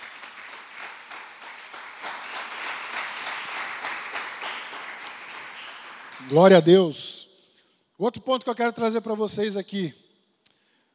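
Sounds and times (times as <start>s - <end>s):
crowd applauding with many hands clapping: 0.0s - 6.5s
speech: 6.2s - 7.2s, 8.0s - 10.0s.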